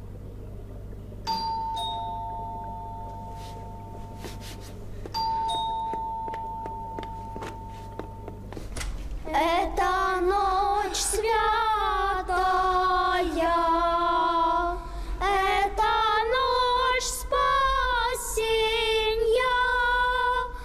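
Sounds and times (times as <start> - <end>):
two-tone ding-dong doorbell ringing at a home's front door: 1.3 - 4.2, 5.1 - 8.4
children singing: 9.3 - 20.3.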